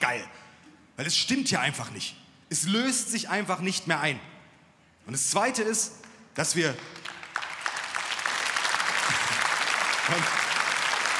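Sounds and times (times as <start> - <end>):
speech: 1.0 - 4.3, 5.1 - 7.1, 10.1 - 10.4
audience applause: 6.8 - 11.1.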